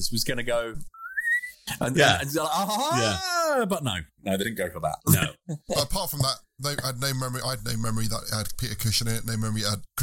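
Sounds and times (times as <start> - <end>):
speech: 0.0 - 1.0, 1.8 - 10.0
short clear whistle sliding upward: 1.0 - 1.6.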